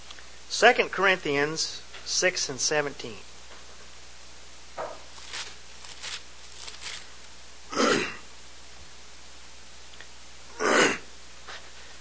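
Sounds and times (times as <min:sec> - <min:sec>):
speech: 0:00.5 - 0:03.3
person clearing throat: 0:07.7 - 0:08.3, 0:10.5 - 0:11.1.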